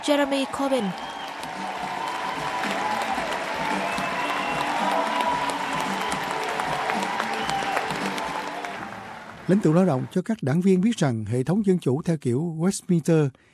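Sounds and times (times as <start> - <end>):
speech: 0.0 - 1.8, 9.5 - 13.5
large crowd applauding in a big hall: 0.0 - 10.3
cheers and whistles in a big hall: 0.3 - 9.3.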